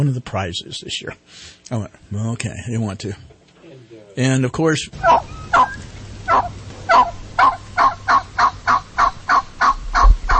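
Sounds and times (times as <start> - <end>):
speech: 0.0 - 3.3, 4.2 - 7.1
wild turkeys gobbling in an urban environment: 4.9 - 10.3.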